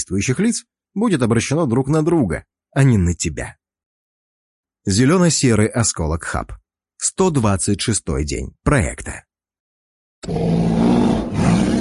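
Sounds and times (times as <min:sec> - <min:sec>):
speech: 0:00.0 - 0:03.6, 0:04.8 - 0:09.3
bear roaring in a forest: 0:10.2 - 0:11.8.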